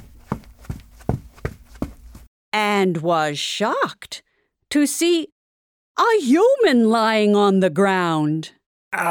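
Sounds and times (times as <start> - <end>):
running footsteps on a hard floor: 0.0 - 2.3
speech: 2.5 - 5.3, 6.0 - 9.1.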